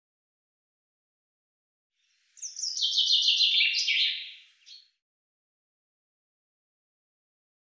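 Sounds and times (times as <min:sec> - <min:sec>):
common chaffinch song: 0:02.4 - 0:04.4.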